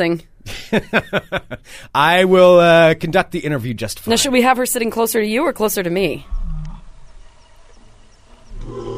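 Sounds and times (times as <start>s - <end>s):
speech: 0.0s - 6.6s
lion roar sound effect: 6.3s - 6.9s, 8.5s - 8.9s.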